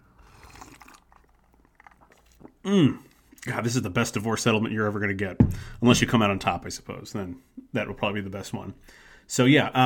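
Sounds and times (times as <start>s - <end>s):
drink being sipped: 0.1s - 3.2s
speech: 2.6s - 9.8s.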